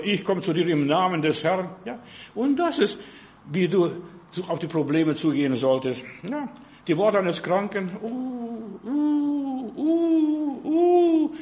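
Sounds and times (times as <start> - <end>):
speech: 0.0 - 11.3
person imitating an eagle owl hooting: 8.0 - 11.3.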